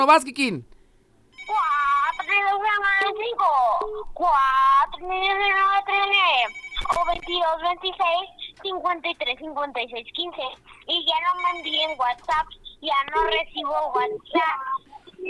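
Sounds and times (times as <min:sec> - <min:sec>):
speech: 0:00.0 - 0:00.7, 0:02.3 - 0:15.2
telephone with melodic warbling ringtone: 0:01.4 - 0:02.6, 0:05.8 - 0:07.4, 0:11.1 - 0:12.6.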